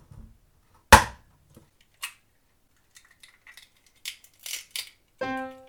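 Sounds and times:
small egg shell and handling noises: 0.9s - 5.5s
eggs cracking into a bowl of sieved sugar: 1.8s - 5.5s.

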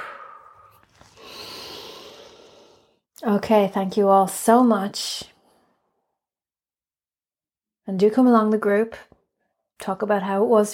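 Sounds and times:
soft airy breathing during a guided relaxation exercise: 0.0s - 3.0s
speech: 3.2s - 5.3s, 7.9s - 9.1s, 9.8s - 10.7s.

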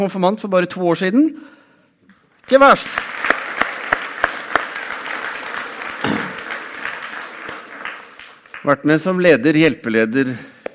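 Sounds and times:
speech: 0.0s - 1.6s, 2.5s - 3.1s, 8.6s - 10.5s
audience clapping: 2.3s - 9.4s.

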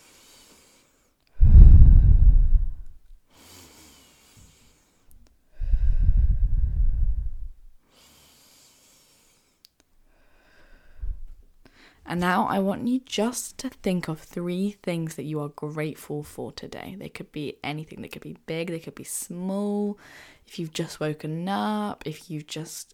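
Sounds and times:
deep breaths in through the nose and out through the mouth: 0.0s - 12.1s, 20.0s - 20.4s
speech: 12.1s - 22.9s.

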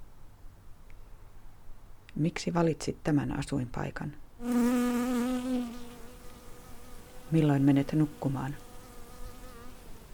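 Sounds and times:
speech: 2.2s - 4.7s, 7.3s - 8.6s
large bumblebee carrying pollen buzzing on a sunny warm evening in Rovaniemi: 4.4s - 10.1s.

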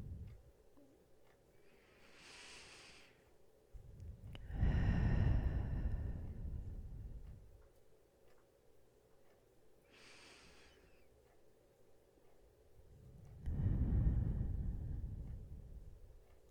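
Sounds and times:
slow deep meditative breathing in and out: 0.0s - 0.5s, 1.6s - 7.6s, 9.9s - 11.1s, 12.8s - 16.4s.

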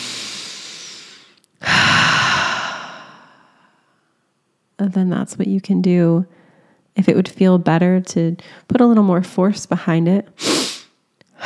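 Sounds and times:
deep human breath in through the nose and out through the mouth: 0.0s - 4.2s, 6.3s - 6.9s, 10.7s - 11.4s
speech: 4.8s - 6.4s, 7.0s - 10.6s.

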